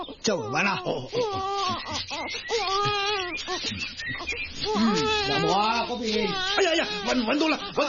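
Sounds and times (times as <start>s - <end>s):
baby crying: 0.0s - 7.8s
speech: 0.2s - 7.8s.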